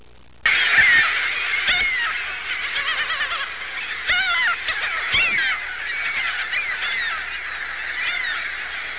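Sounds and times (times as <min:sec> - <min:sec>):
Ring-billed Gull calling: 0:00.4 - 0:08.9.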